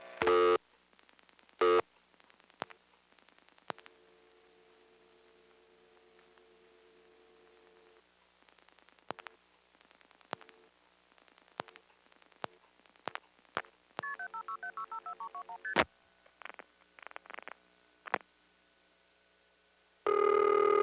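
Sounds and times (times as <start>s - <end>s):
faint steady hum: 0.0s - 20.8s
short bursts of telephone line tone: 0.2s - 0.6s, 20.1s - 20.8s
telephone dialing clicks: 3.6s - 4.0s, 8.8s - 9.4s, 10.2s - 10.7s, 11.5s - 15.8s
touch-tone dialing beeps: 14.0s - 15.8s.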